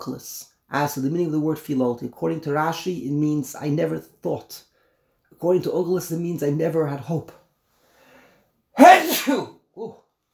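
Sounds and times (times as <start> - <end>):
speech: 0.0 - 4.7, 5.4 - 7.4, 8.8 - 10.0
loud sneeze: 8.8 - 9.9.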